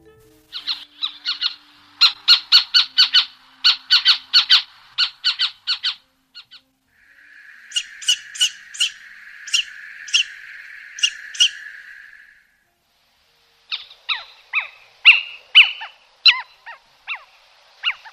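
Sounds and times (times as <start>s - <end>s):
steady whistling tone: 0.0s - 18.1s
little owl calling: 0.5s - 12.7s, 13.6s - 18.1s.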